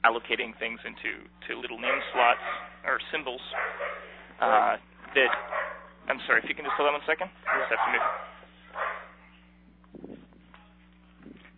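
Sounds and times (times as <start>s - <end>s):
speech: 0.0s - 8.9s
dog barking: 1.8s - 2.8s, 3.5s - 4.2s, 5.2s - 9.2s.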